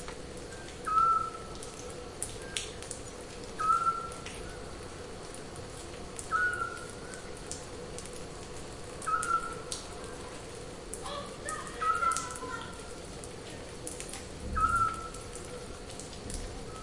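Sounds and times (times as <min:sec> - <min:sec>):
crackly background noise: 0:00.0 - 0:16.8
Eurasian scops owl uttering short piping whistles: 0:00.8 - 0:01.4, 0:03.6 - 0:04.1, 0:06.3 - 0:06.8, 0:09.0 - 0:09.6, 0:14.6 - 0:15.2.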